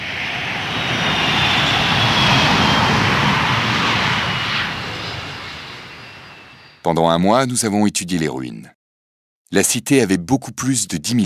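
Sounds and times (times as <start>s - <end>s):
airplane engine drone in flight with faint whine: 0.0s - 6.8s
speech: 6.9s - 8.8s, 9.5s - 11.2s.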